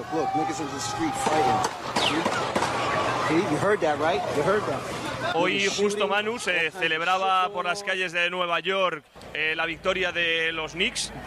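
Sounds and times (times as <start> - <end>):
dense crowd of voices and shouting in Times Square New York: 0.0 - 11.2
speech: 0.1 - 11.2
gunshots in Times Square New York during street celebrations: 1.2 - 3.2.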